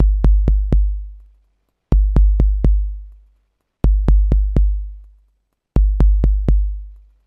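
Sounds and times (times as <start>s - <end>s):
ambient house kick drum at 125 BPM: 0.0s - 7.2s.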